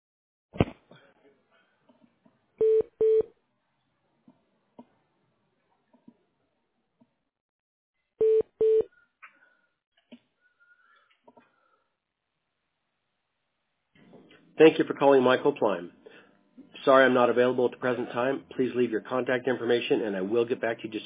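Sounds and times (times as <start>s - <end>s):
telephone keypad tones dialing an extension: 8.2s - 8.9s
speech: 14.6s - 16.0s, 16.8s - 21.0s.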